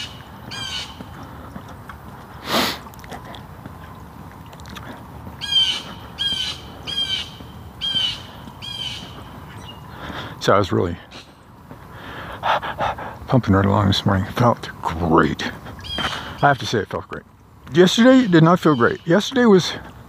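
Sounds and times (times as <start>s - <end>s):
blue jay giving harsh squawking calls: 0.0s - 1.1s, 5.4s - 10.1s, 11.1s - 11.5s, 15.8s - 16.8s, 17.8s - 19.6s
speech: 10.4s - 11.1s, 13.3s - 15.6s, 16.4s - 19.9s.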